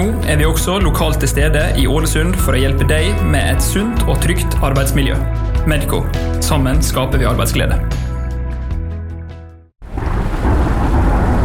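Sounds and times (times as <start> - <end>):
speech: 0.0 - 8.0
soft music: 0.0 - 9.6
loud downpour of heavy rain: 9.8 - 11.4.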